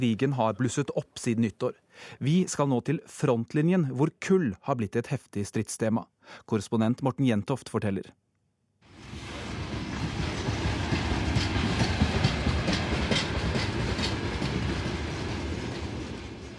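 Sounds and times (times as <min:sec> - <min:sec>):
speech: 0:00.0 - 0:08.2
long freight train of coal-laden wagons clattering past a road barrier: 0:09.0 - 0:16.5.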